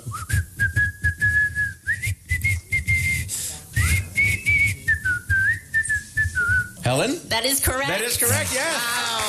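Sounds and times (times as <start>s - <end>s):
person whistling a nursery-rhyme melody: 0.0s - 6.8s
speech: 6.9s - 9.1s.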